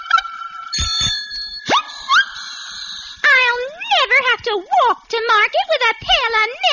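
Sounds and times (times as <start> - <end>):
bicycle siren rising whistle-like swoop: 0.0 - 3.2
bicycle bell ringing: 0.7 - 3.2
speech: 4.5 - 6.7.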